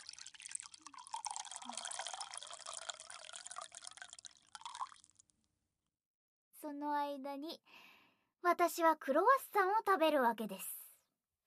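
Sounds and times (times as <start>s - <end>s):
hot water being poured over noodles: 0.0s - 5.3s
speech: 6.6s - 7.8s, 8.4s - 10.7s.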